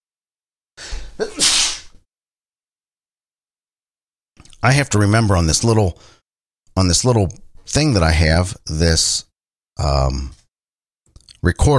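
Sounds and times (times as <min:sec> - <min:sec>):
person sneezing: 0:00.8 - 0:02.0
speech: 0:04.6 - 0:06.2, 0:06.8 - 0:10.4, 0:11.4 - 0:11.7.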